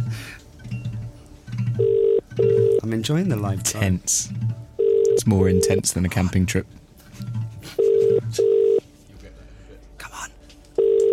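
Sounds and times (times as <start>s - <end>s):
low noise: 0.0s - 11.1s
telephone ringing tone on an unanswered outgoing call: 1.8s - 2.8s, 4.8s - 5.8s, 7.8s - 8.8s, 10.8s - 11.1s
speech: 2.9s - 4.6s, 5.2s - 7.4s.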